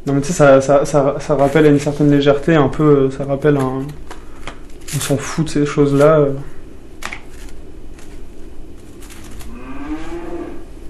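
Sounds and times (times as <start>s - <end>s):
speech: 0.1s - 4.2s, 4.9s - 6.6s
cow mooing: 9.5s - 10.8s.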